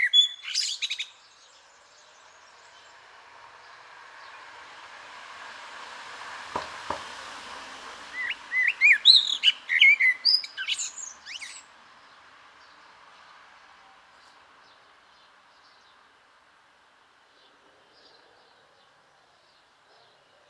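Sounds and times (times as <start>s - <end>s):
common blackbird Turdus merula singing whistled notes and twittering: 0.0s - 3.0s, 8.1s - 16.1s, 17.3s - 20.4s.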